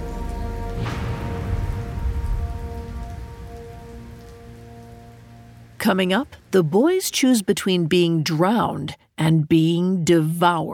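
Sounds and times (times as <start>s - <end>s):
water splash: 0.0s - 5.5s
heavy rain pouring: 0.0s - 8.8s
speech: 5.8s - 10.7s.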